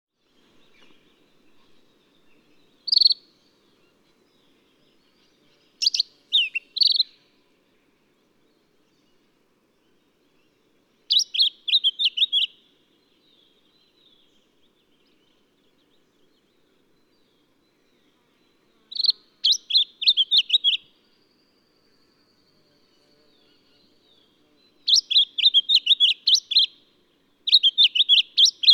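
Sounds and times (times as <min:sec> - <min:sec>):
Lemon-bellied flycatcher Microeca flavigaster calling: 0:02.6 - 0:04.0, 0:05.2 - 0:07.2, 0:11.1 - 0:12.6, 0:18.8 - 0:20.9, 0:22.8 - 0:26.8, 0:27.4 - 0:28.7.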